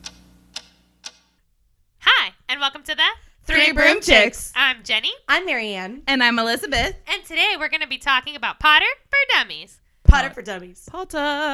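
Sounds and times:
sharp ticks: 0:00.0 - 0:01.3
faint low hum: 0:00.0 - 0:11.5
speech: 0:02.6 - 0:11.5.

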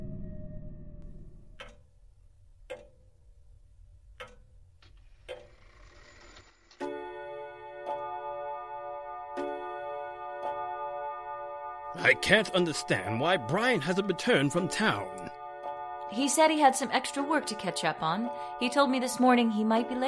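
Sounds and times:
mantel clock ticking: 0:01.4 - 0:07.0, 0:12.0 - 0:20.0
speech: 0:12.0 - 0:15.4, 0:16.1 - 0:20.0.

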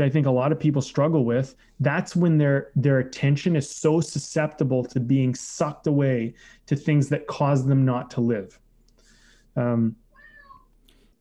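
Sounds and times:
speech: 0:00.0 - 0:08.6, 0:09.6 - 0:10.0
cat meowing: 0:10.1 - 0:10.8.

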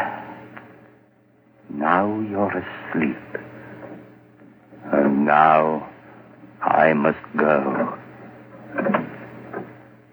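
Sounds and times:
low steady hum: 0:00.0 - 0:10.1
speech: 0:02.0 - 0:03.5, 0:05.3 - 0:05.9, 0:06.8 - 0:08.0, 0:08.7 - 0:09.0
door being opened or closed with clunk and creak: 0:08.6 - 0:09.8.

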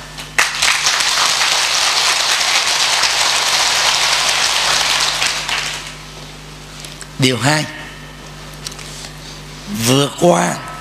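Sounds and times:
audience applause: 0:00.4 - 0:06.0
speech: 0:07.2 - 0:07.8, 0:09.7 - 0:10.6.

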